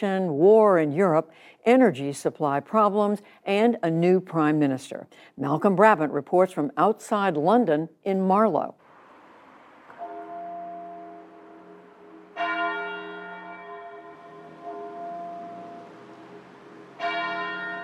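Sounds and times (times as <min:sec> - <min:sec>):
speech: 0:00.0 - 0:08.8
muffled church bells tolling at noon in Marlow: 0:10.0 - 0:17.8.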